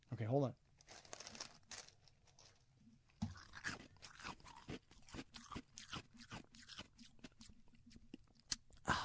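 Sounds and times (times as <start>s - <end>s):
speech: 0.1s - 1.0s
someone chewing ice: 3.3s - 8.6s.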